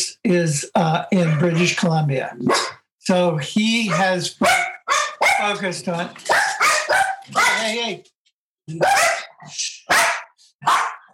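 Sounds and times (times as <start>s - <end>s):
speech: 0.2s - 4.7s, 5.4s - 6.4s, 7.6s - 10.0s
dogs barking: 1.2s - 1.8s, 2.4s - 2.8s, 3.8s - 5.6s, 6.2s - 7.8s, 8.7s - 11.1s.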